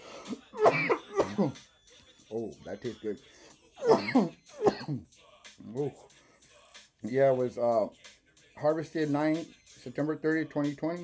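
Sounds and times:
harsh raspy coughs: 0:00.3 - 0:01.6, 0:03.8 - 0:05.0
speech: 0:01.4 - 0:01.7, 0:02.3 - 0:06.2, 0:07.0 - 0:11.0.

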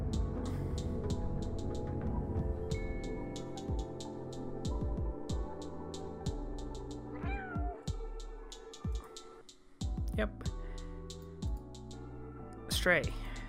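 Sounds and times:
music with deep thumping beats: 0:00.2 - 0:09.2, 0:09.8 - 0:12.0, 0:13.0 - 0:13.4
cat meowing in a video game trailer: 0:07.2 - 0:07.9.

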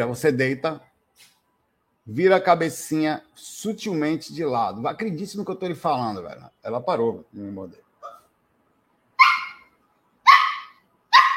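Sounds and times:
speech: 0:00.0 - 0:01.3, 0:02.1 - 0:07.8
dog barking: 0:09.2 - 0:11.3.

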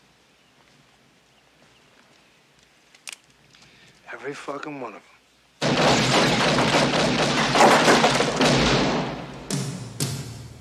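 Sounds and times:
speech: 0:04.1 - 0:05.1
sound-effect single gunshot bangs: 0:05.6 - 0:09.6
sound-effect rapid gunfire: 0:05.6 - 0:09.7.

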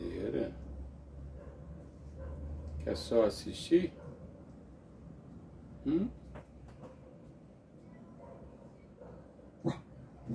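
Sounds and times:
dog barking short and sharp: 0:01.3 - 0:02.6, 0:03.9 - 0:04.2, 0:08.2 - 0:10.3
speech: 0:02.8 - 0:04.0, 0:05.8 - 0:06.2.

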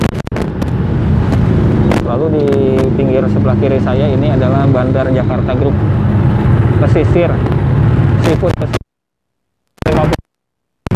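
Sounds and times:
dense street traffic: 0:00.0 - 0:08.8, 0:09.8 - 0:10.2
wind-buffeted rumble: 0:00.0 - 0:08.8
minibuses passing: 0:00.4 - 0:08.8
speech: 0:03.2 - 0:06.2, 0:06.8 - 0:07.6, 0:08.3 - 0:08.8.

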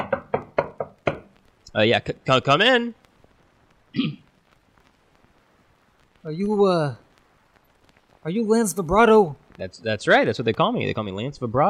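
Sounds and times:
firm knocks on a chamber door: 0:00.0 - 0:01.3
speech: 0:01.7 - 0:03.0, 0:03.9 - 0:04.1, 0:06.2 - 0:07.0, 0:08.2 - 0:11.6.

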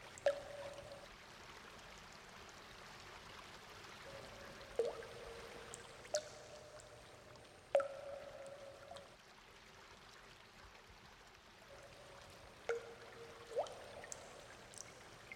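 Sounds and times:
light water drops dripping: 0:00.1 - 0:01.1, 0:04.0 - 0:09.2, 0:11.7 - 0:15.3.

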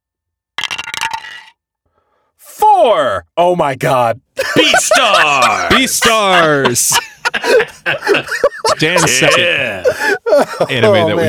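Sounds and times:
die clattering down through a dice tower: 0:00.6 - 0:01.6
speech: 0:02.4 - 0:11.2
laughter: 0:04.4 - 0:11.2.

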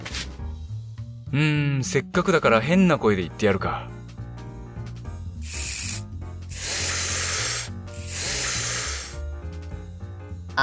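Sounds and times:
speech: 0:01.3 - 0:04.0
helium gas hissing from a canister: 0:05.4 - 0:09.2.

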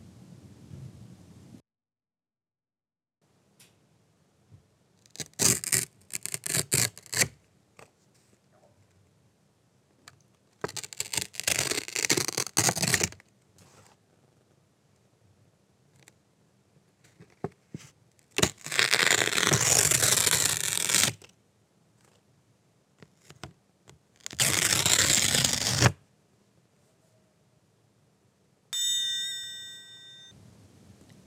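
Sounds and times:
paper tearing: 0:05.1 - 0:07.4, 0:10.6 - 0:13.2, 0:18.2 - 0:21.3, 0:24.2 - 0:26.0.

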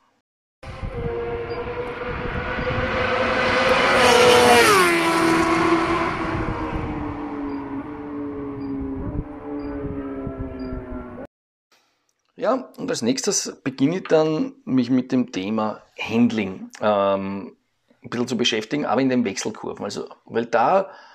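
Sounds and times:
sport motorcycle racing along a race track: 0:00.7 - 0:11.3
speech: 0:12.5 - 0:21.1.

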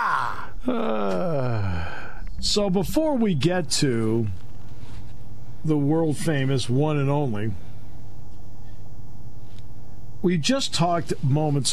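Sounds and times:
heavy breathing into a microphone: 0:00.4 - 0:02.3
speech: 0:02.4 - 0:04.4, 0:05.6 - 0:07.6, 0:10.2 - 0:11.7.

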